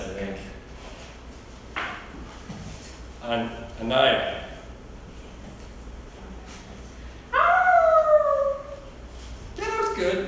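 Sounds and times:
speech: 3.3 - 4.4
person imitating a werewolf howl as a roll-call response in a class: 7.3 - 8.8.

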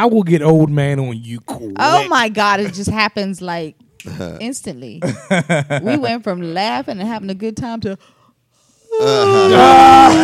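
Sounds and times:
speech: 0.0 - 8.2, 8.9 - 10.2
man yawning: 8.9 - 10.2.

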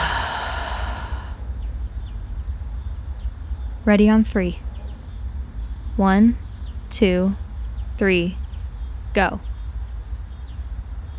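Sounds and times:
deep breath during a guided relaxation: 0.0 - 1.5
speech: 3.9 - 4.7, 6.0 - 7.4, 8.0 - 8.4, 9.2 - 9.5.

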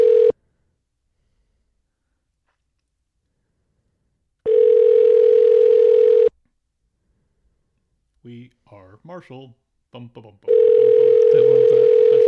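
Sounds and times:
payphone dial tone: 0.0 - 0.3, 4.5 - 6.3, 10.5 - 12.2
speech: 9.0 - 12.2.

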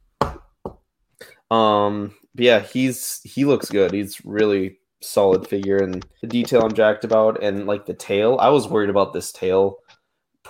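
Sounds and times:
speech: 1.5 - 10.4
hollow knocks on a wooden surface: 5.3 - 7.2.

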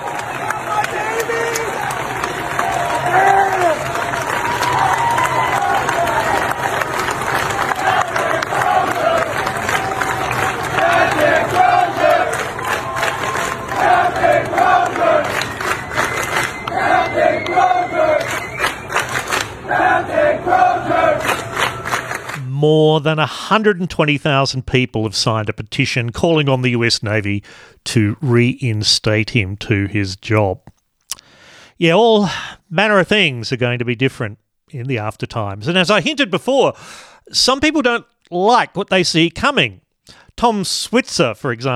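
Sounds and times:
sailors shouting and whooping: 0.0 - 22.4
crowd of sailors cheering: 0.0 - 23.0
speech: 23.0 - 30.6, 31.8 - 41.7.

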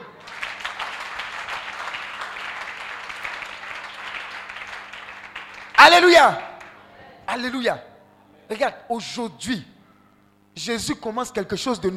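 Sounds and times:
congregation clapping to acclaim God during a church service: 0.0 - 6.8
speech: 5.9 - 6.4, 7.4 - 7.9, 8.5 - 9.7, 10.6 - 11.9.

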